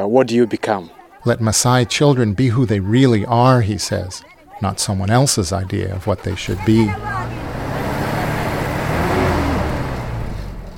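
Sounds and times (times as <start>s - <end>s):
speech: 0.0s - 7.6s
pickup truck engine rumbling as it drives off on a road: 6.2s - 10.7s.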